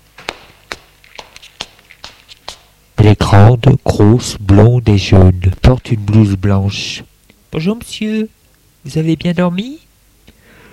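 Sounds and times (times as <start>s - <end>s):
footsteps of a woman carrying a tray on a hard floor: 0.2s - 2.8s
speech: 3.3s - 9.9s.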